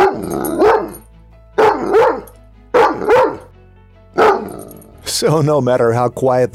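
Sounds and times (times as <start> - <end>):
large pet dog barking inside a house: 0.0 - 1.0, 1.6 - 3.5, 4.2 - 5.0
speech: 5.2 - 6.5.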